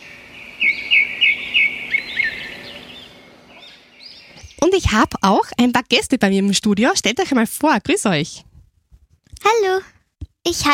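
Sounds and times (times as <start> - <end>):
bird singing bright high chirping phrases: 0.0 - 5.6
soft hum: 0.0 - 10.7
speech: 4.6 - 8.5, 9.4 - 10.7.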